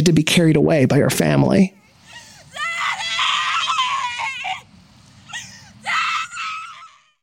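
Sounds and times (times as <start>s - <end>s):
speech: 0.0s - 1.8s
low rumble: 1.6s - 7.2s
woman screaming in distress: 1.8s - 7.2s.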